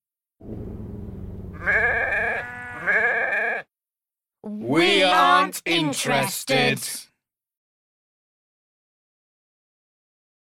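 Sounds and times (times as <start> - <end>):
sheep bleating: 1.6 - 3.7
speech: 4.7 - 7.1.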